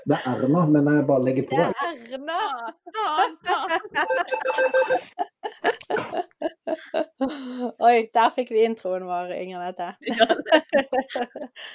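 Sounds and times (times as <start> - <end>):
speech: 0.0 - 6.2, 7.2 - 11.7
people laughing: 1.5 - 7.8, 10.1 - 11.7
phone ringing with electronic ringtone: 4.0 - 5.1.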